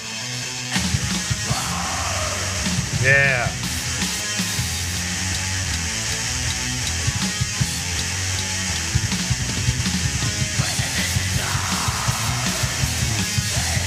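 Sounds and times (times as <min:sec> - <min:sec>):
dense wall of distorted guitars and drums: 0:00.0 - 0:13.8
black metal music: 0:00.3 - 0:13.8
harsh screamed vocals: 0:01.4 - 0:03.6, 0:10.6 - 0:13.8
person speaking a word: 0:03.0 - 0:03.6
speech: 0:03.0 - 0:03.6.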